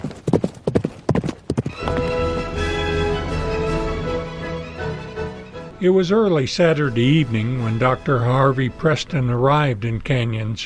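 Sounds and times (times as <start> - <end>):
horse hoofbeats galloping: 0.0 - 3.0
orchestral music: 1.7 - 9.7
speech: 5.8 - 10.6.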